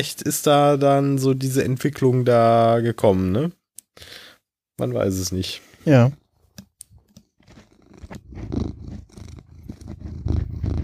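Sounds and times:
speech: 0.0 - 4.2, 4.8 - 6.2
cat scratching and rustling against the microphone: 6.9 - 10.8
cat purring: 7.5 - 10.8.

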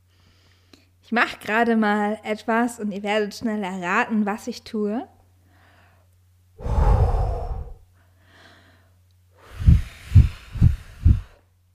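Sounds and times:
speech: 1.1 - 5.1
puffs of air blowing dust off an object: 6.6 - 8.6, 9.4 - 11.5.

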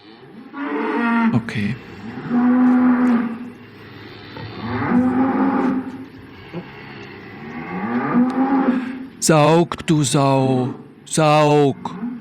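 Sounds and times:
cow mooing with long deep lows: 0.0 - 9.2
speech: 1.3 - 3.4, 9.3 - 12.0.

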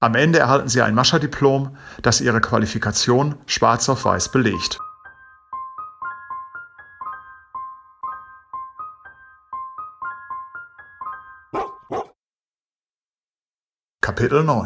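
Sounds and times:
speech: 0.0 - 4.9, 14.1 - 14.6
sled dogs huskies barking and yipping: 11.5 - 12.2.

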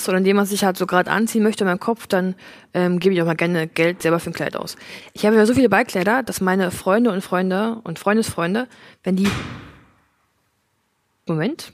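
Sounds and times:
speech: 0.0 - 9.6, 11.3 - 11.7
door at a club meeting place thudding shut: 9.2 - 10.1.

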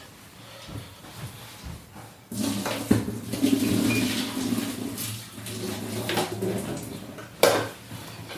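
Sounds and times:
water pouring and splashing into a metal sink while draining boiled potatoes: 2.3 - 7.2.

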